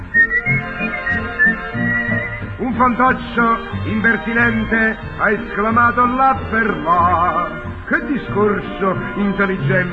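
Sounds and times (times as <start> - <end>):
person whistling a tune: 0.0 - 2.6
speech: 2.8 - 9.9.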